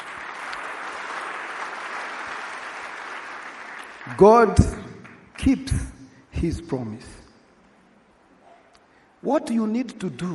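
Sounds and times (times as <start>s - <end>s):
audience applauding: 0.0s - 5.6s
speech: 4.1s - 4.8s, 5.4s - 7.2s, 9.2s - 10.3s.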